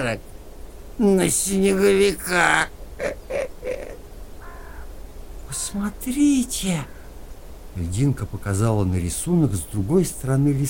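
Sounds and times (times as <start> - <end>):
speech: 0.0 - 0.3, 1.0 - 3.4, 5.5 - 7.0, 7.8 - 10.6
crow cawing: 2.9 - 7.4.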